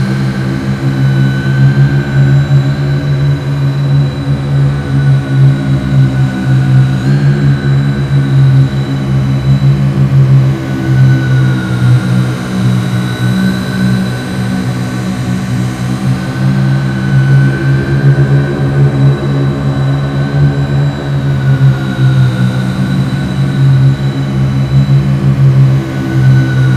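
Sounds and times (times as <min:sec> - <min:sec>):
giant sci-fi fan turbine: 0:00.0 - 0:26.7.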